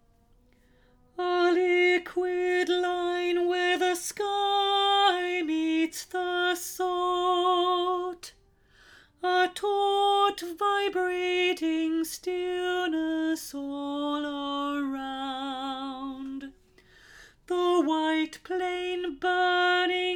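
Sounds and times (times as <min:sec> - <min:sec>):
alto voice singing a verse: 0:01.1 - 0:08.4, 0:09.2 - 0:16.7, 0:17.4 - 0:20.1.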